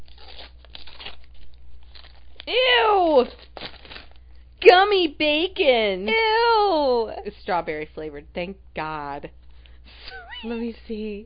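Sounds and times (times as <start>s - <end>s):
wrapping paper tearing off a gift: 0.0s - 4.4s
speech: 4.9s - 9.4s, 10.4s - 11.2s.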